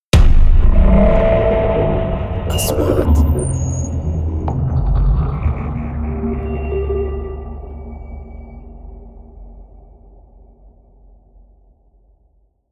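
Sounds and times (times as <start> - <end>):
3D trailer sound effects: 0.1 - 11.3.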